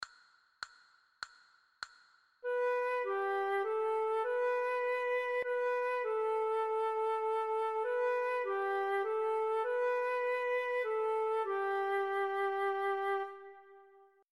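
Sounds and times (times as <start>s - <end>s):
recorder playing: 2.5s - 13.9s.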